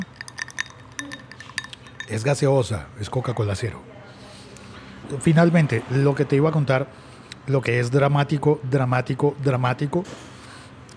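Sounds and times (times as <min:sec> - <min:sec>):
ice cubes clinking in a glass: 0:00.0 - 0:02.2
speech: 0:02.1 - 0:04.0, 0:05.1 - 0:10.3.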